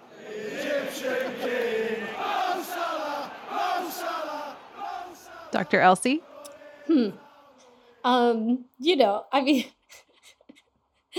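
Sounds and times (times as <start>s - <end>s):
laughter: 0.0s - 7.4s
large stadium crowd of football fans chanting a cheer: 0.0s - 8.4s
speech: 5.5s - 6.3s, 6.9s - 7.2s, 8.0s - 10.0s.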